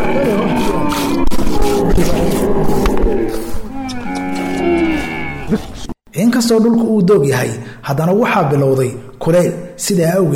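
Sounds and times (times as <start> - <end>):
camels bellowing and groaning as they are brought to watering holes: 0.0 - 6.0
speech: 2.0 - 2.4, 6.5 - 10.3.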